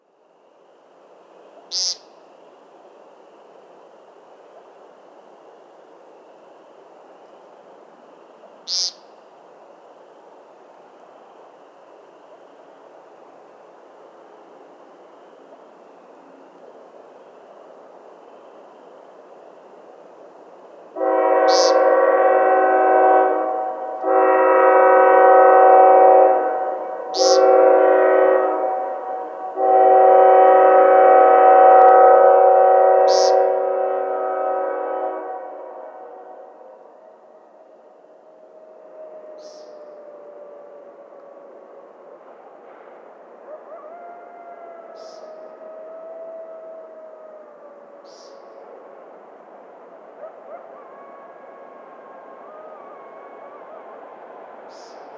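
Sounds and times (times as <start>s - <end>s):
train: 0.0s - 55.1s
coyotes: 1.5s - 2.9s, 8.4s - 9.8s, 21.2s - 22.8s, 27.0s - 27.9s, 36.9s - 41.9s, 43.3s - 48.9s, 50.1s - 55.1s
upland chorus frogs: 1.6s - 2.4s, 8.5s - 9.4s, 21.3s - 22.2s, 27.1s - 27.6s, 33.0s - 33.5s.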